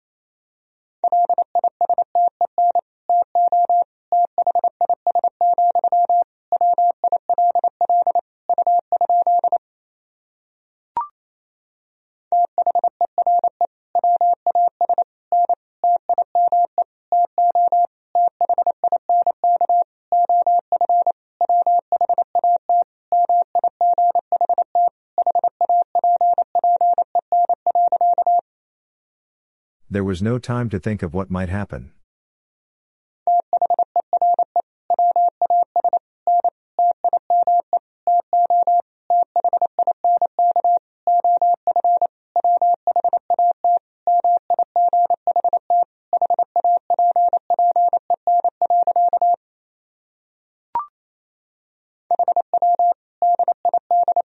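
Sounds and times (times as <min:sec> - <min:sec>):
fast Morse code beeps at 28 words per minute in a single steady pitch: 0:01.0 - 0:09.6, 0:12.4 - 0:28.4, 0:33.3 - 0:49.4, 0:52.1 - 0:54.2
speech: 0:30.0 - 0:32.0.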